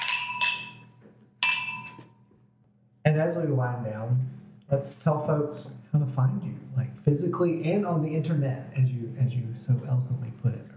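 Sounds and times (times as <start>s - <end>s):
wine glasses clinking in a toast: 0.0s - 2.1s
speech: 3.2s - 10.7s.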